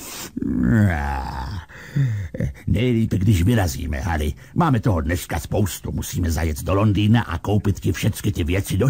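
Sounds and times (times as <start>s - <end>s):
person yawning and groaning while sitting up and stretching: 0.0s - 2.8s
speech: 0.4s - 1.4s, 2.0s - 8.8s
person grunting: 0.4s - 2.8s.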